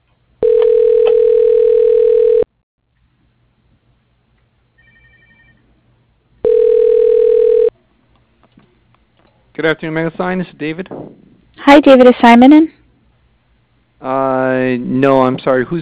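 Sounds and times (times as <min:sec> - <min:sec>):
telephone ringback tone while dialing an extension: 0:00.4 - 0:02.5, 0:04.8 - 0:05.6, 0:06.4 - 0:07.7
speech: 0:09.6 - 0:12.8, 0:14.0 - 0:15.8.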